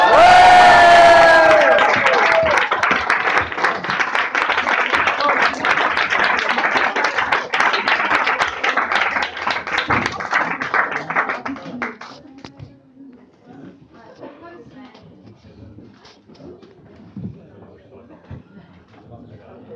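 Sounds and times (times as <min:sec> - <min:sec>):
loud crowd cheering with high whoops: 0:00.0 - 0:03.0
sustained dense applause: 0:00.0 - 0:12.2.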